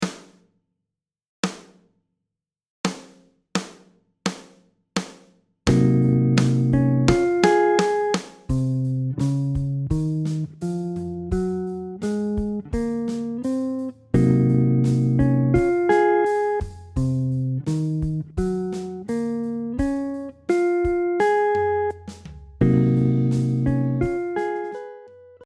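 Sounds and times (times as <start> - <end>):
guitar in C Locrian: 5.7 - 25.4.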